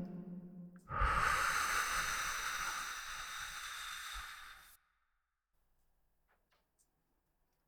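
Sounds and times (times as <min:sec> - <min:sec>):
person taking a slow deep breath: 0:00.8 - 0:04.8.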